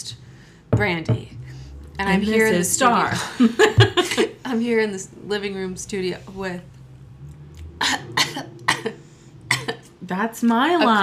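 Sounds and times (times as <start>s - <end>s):
speech: 0.0s - 1.4s, 2.0s - 6.8s, 10.1s - 11.0s
person clearing throat: 7.8s - 9.9s
person coughing: 8.2s - 9.9s.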